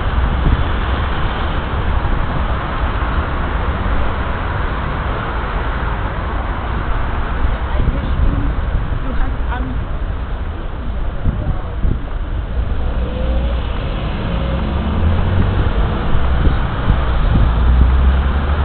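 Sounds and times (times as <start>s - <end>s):
loud steady traffic at a busy city intersection: 0.0s - 18.6s
wind buffeting the microphone: 0.0s - 18.6s.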